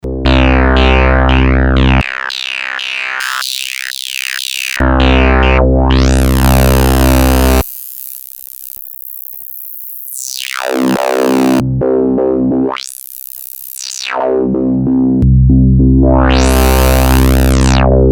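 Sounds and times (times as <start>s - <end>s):
Novation Bass Station 2 bass synthesizer in filter mode: 0.0s - 3.4s, 4.8s - 7.6s, 10.6s - 12.8s, 14.0s - 18.1s.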